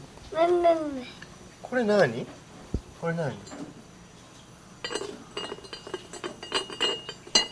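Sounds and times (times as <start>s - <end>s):
speech: 0.4s - 2.4s, 3.0s - 3.6s
glass kettle clinking when handled and set down: 4.8s - 7.5s
glass kettle ringing: 4.8s - 7.5s.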